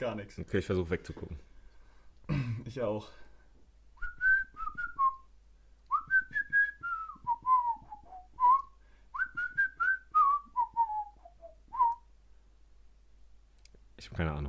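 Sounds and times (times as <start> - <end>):
speech: 0.0 - 1.5, 2.7 - 3.2, 14.0 - 14.4
person whistling a tune: 4.0 - 5.3, 5.9 - 12.1.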